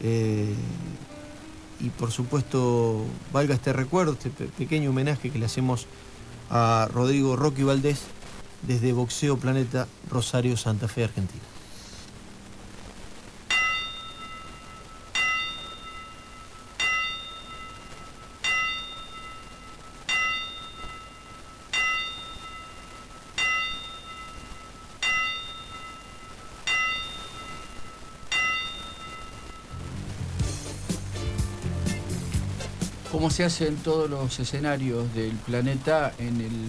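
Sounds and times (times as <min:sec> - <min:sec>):
speech: 0:00.0 - 0:00.9, 0:01.8 - 0:11.5, 0:33.4 - 0:36.6
burst of broadband noise: 0:00.0 - 0:36.6
boxing ring bell strikes tolled as a farewell tribute: 0:13.5 - 0:29.8.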